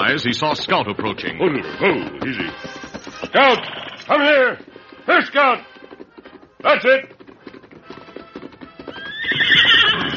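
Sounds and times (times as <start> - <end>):
horse hooves clopping: 0.0 - 10.1
speech: 0.1 - 5.7, 6.6 - 7.2
horse whinnying: 1.7 - 4.6, 8.5 - 10.1.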